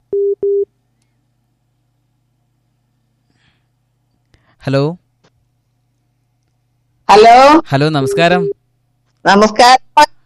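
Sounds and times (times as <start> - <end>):
phone busy tone after a dropped call: 0.1 - 0.7
speech: 4.6 - 5.0, 7.1 - 8.6, 9.2 - 10.1.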